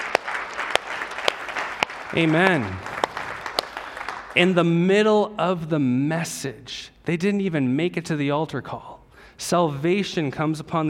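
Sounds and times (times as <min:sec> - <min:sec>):
crowd applause: 0:00.0 - 0:04.4
sharp loud claps: 0:00.0 - 0:04.4
speech: 0:02.1 - 0:02.9, 0:04.4 - 0:10.8.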